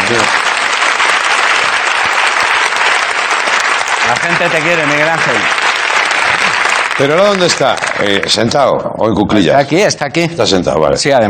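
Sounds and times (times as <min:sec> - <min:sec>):
audience applauding: 0:00.0 - 0:08.7
speech: 0:00.1 - 0:00.5, 0:04.1 - 0:05.7, 0:07.0 - 0:11.2.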